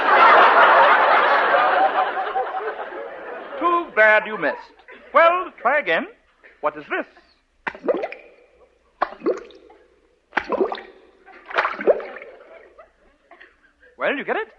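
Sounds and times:
laughter: 0.0 - 5.7, 11.2 - 14.2
speech: 4.0 - 8.1, 14.0 - 14.5
wet splashing slaps like underwater applause: 7.6 - 12.5.

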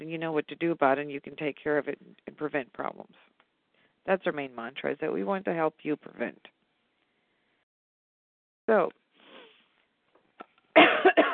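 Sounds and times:
speech: 0.1 - 3.3, 4.0 - 6.6, 8.7 - 9.0
person coughing harshly: 10.8 - 11.3.

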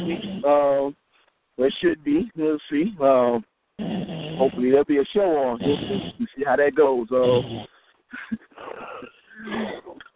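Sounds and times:
person snoring: 0.0 - 0.7, 3.8 - 4.8, 5.5 - 6.4, 7.2 - 7.7
speech: 0.0 - 1.0, 1.6 - 9.8.

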